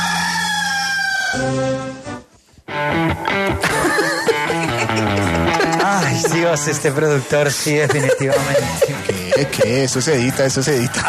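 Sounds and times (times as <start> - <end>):
rooster crowing: 0.0 - 1.6
speech: 1.3 - 2.1, 6.4 - 11.0
laughter: 3.6 - 11.0.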